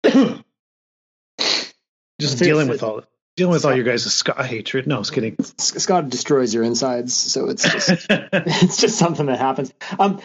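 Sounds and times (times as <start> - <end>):
person coughing: 0.0 - 0.5, 7.6 - 8.5
speech: 0.2 - 0.4, 2.2 - 10.2
laughter: 6.6 - 9.2.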